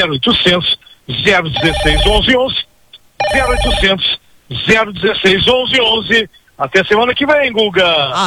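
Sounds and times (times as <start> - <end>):
speech: 0.0 - 8.2
telephones ringing with incoming calls: 1.6 - 2.5, 3.2 - 4.0.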